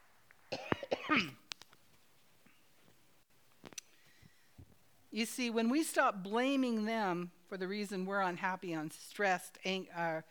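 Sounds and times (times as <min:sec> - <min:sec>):
harsh coughing: 0:00.5 - 0:01.4
speech: 0:01.1 - 0:01.4, 0:05.2 - 0:10.2
faint clicks and small mouth noises: 0:03.7 - 0:04.0.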